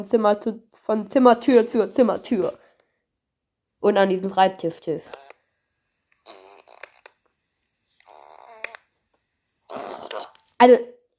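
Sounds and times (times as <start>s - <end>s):
speech: 0.0s - 2.6s, 3.8s - 5.2s, 10.6s - 11.1s
man farting in a studio: 6.2s - 7.0s, 8.0s - 8.8s, 9.7s - 10.5s.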